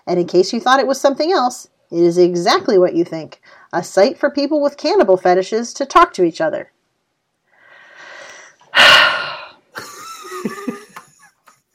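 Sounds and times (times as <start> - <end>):
speech: 0.1 - 6.8
deep breath drawn by a speaker: 7.5 - 9.7.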